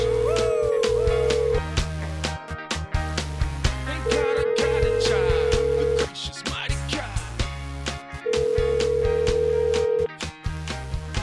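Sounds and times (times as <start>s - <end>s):
telephone ringing in long steady tonal bursts: 0.0s - 1.7s, 4.1s - 6.1s, 8.2s - 10.1s
busy music with a thumping bass line: 0.0s - 11.2s.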